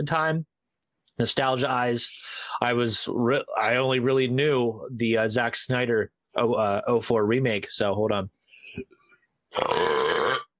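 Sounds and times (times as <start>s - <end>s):
speech: 0.0s - 0.5s, 1.2s - 10.4s
loud drawn-out burp after drinking Diet Pepsi: 9.5s - 10.5s.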